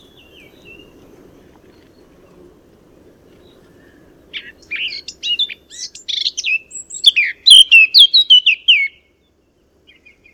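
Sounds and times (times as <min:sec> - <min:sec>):
Eurasian blackcap Sylvia atricapilla singing: 0:04.4 - 0:09.0.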